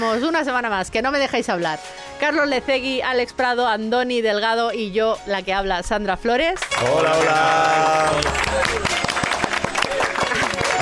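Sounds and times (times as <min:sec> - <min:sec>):
speech: 0:00.0 - 0:08.9
hosts clapping hands in applause: 0:06.6 - 0:10.8.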